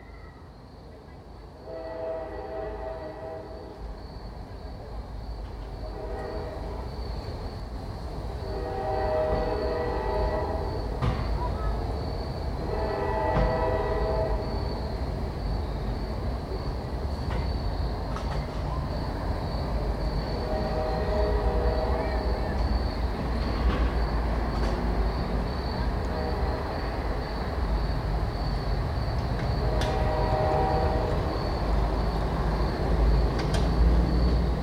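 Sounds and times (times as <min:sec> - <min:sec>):
train rumbling past: 0:00.0 - 0:34.6.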